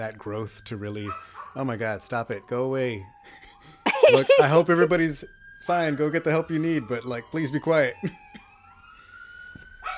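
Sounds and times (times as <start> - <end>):
speech: 0.0 - 3.5, 4.1 - 8.2
passing emergency vehicle siren wailing near a hospital: 0.0 - 9.9
dog barking: 1.1 - 1.6
laughter: 3.9 - 4.9.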